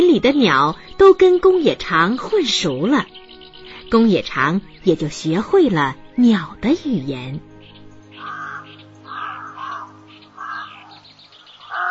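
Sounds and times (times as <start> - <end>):
speech: 0.0 - 3.2, 3.9 - 7.5
flock of crows cawing in a house's courtyard: 7.6 - 11.8.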